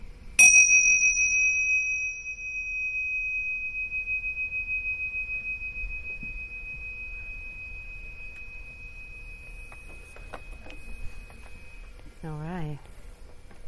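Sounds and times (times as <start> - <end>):
meditation bell ringing: 0.4 - 12.0.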